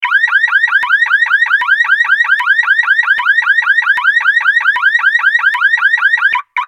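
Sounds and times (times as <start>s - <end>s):
car door open alarm: 0.0s - 6.6s.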